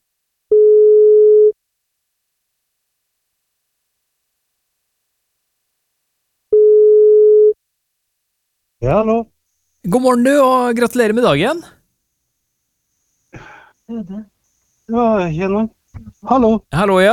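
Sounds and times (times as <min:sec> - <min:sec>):
telephone ringback tone on an outgoing call: 0:00.5 - 0:01.6, 0:06.5 - 0:07.6
speech: 0:08.8 - 0:11.8, 0:13.9 - 0:14.3, 0:14.9 - 0:17.1.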